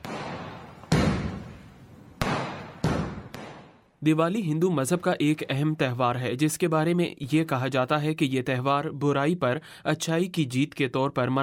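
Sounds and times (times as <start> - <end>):
Diwali firecrackers and fireworks exploding: 0.0 - 4.0
dense background of firework bangs: 0.0 - 4.0
speech: 4.0 - 11.4.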